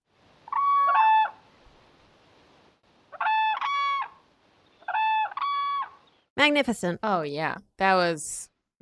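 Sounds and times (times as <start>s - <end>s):
whooping crane mating calls, ringing trumpet-like bugling: 0.4s - 1.4s, 3.1s - 6.1s
speech: 6.4s - 8.8s.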